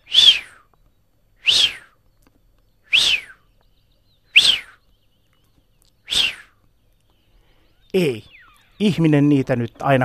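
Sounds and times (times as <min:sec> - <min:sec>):
small ducks whistling calls: 0:00.0 - 0:00.8, 0:01.4 - 0:02.1, 0:02.8 - 0:03.6, 0:04.2 - 0:04.9, 0:05.9 - 0:06.7, 0:07.3 - 0:09.0
speech: 0:07.9 - 0:10.0.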